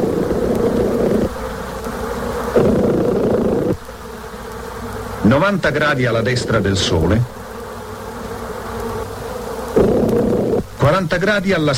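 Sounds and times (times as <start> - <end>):
honeybees buzzing: 0.0 - 11.7
speech: 5.3 - 7.4, 11.0 - 11.7.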